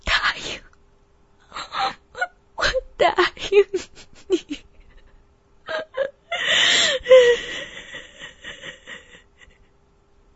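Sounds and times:
woman crying bitterly and sobbing: 1.4 - 9.6
speech: 3.5 - 4.0.

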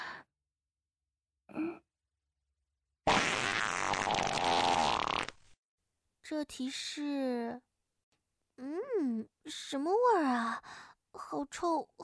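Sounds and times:
long loud raspy sputtering fart: 3.1 - 5.5
speech: 6.3 - 7.7, 8.6 - 12.0.

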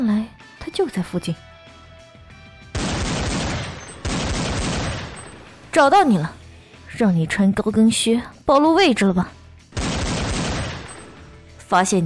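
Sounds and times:
speech: 0.7 - 1.5, 5.8 - 6.4, 7.0 - 9.4, 11.7 - 12.0
rapid gunfire as two people shoot at each other at range: 2.8 - 5.8, 9.8 - 11.4.

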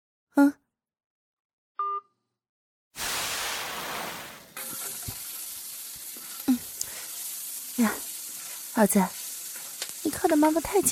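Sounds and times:
speech: 0.4 - 0.6, 8.8 - 9.2, 10.0 - 10.9
vegetables being stir-fried in a hot wok sizzling: 3.0 - 10.9.

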